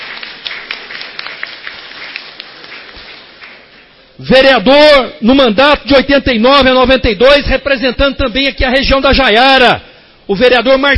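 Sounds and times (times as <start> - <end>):
crowd clapping: 0.0 - 4.0
speech: 4.2 - 10.9.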